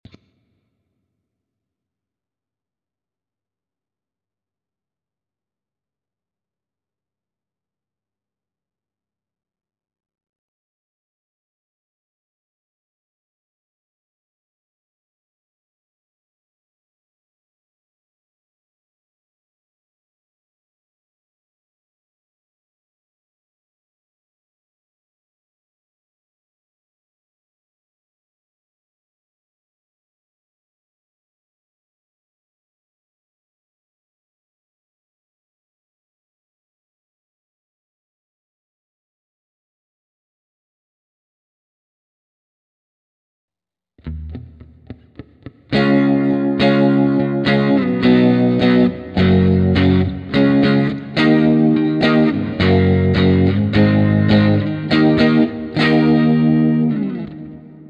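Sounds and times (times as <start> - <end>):
rhythm guitar fill: 44.0 - 57.8.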